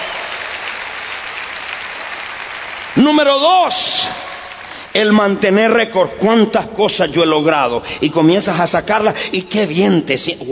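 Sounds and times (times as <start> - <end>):
church congregation applauding during a service: 0.0 - 6.4
speech: 3.0 - 4.3, 5.0 - 10.4.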